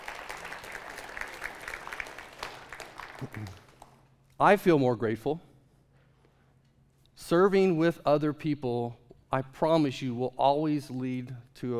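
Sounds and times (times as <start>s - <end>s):
crowd applause: 0.0s - 4.0s
speech: 3.2s - 3.6s, 4.4s - 5.5s, 7.3s - 11.7s.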